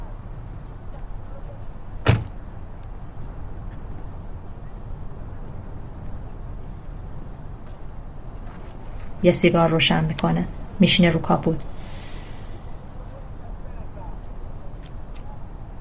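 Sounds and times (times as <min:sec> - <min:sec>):
car door thumping shut: 0:02.0 - 0:02.4
speech: 0:09.2 - 0:11.7.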